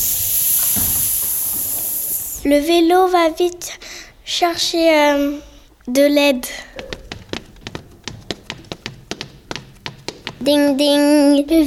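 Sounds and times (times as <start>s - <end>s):
sharp hiss: 0.0s - 2.5s
speech: 2.4s - 7.0s, 10.4s - 11.6s.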